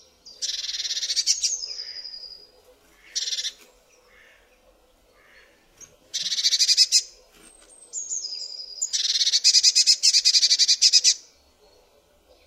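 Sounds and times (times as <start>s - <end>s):
Eurasian blue tit giving harsh buzzy churring bursts and high descending whistled notes: 0.4s - 2.4s, 6.1s - 7.1s, 7.9s - 11.3s.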